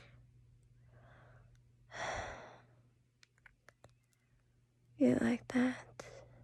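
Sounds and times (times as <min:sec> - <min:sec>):
slow breathing close to the microphone: 0:00.8 - 0:02.8
speech: 0:05.0 - 0:05.9.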